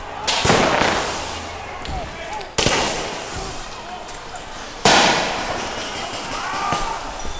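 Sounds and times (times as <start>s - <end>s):
fireworks and tear gas canisters fired at a street protest in Portland Oregon: 0.0s - 7.3s
rumbling crowd din with voices at a street protest: 0.0s - 7.3s.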